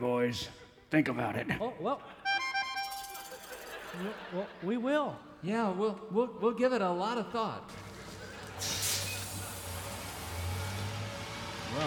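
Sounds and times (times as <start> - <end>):
speech: 0.0 - 2.2, 3.9 - 7.8
laughter: 3.0 - 5.2, 7.7 - 9.7
bus air brakes releasing: 8.0 - 11.7.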